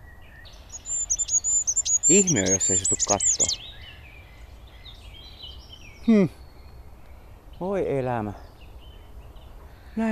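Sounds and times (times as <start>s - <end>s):
soft outdoor background: 0.0s - 10.0s
goldcrest giving high thin needle-like calls on a branch: 0.6s - 3.7s
speech: 2.1s - 3.7s, 6.1s - 6.4s, 7.6s - 8.5s.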